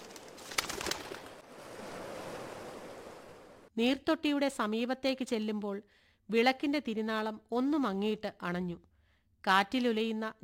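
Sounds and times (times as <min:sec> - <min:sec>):
pigeons flapping wings flying up around an altar: 0:00.0 - 0:02.4
speech: 0:03.8 - 0:10.4.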